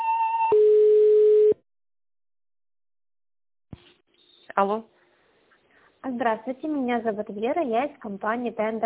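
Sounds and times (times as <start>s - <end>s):
electronic telephone tone while a call is transferred: 0.2s - 1.6s
speech: 4.6s - 4.9s, 6.1s - 8.8s.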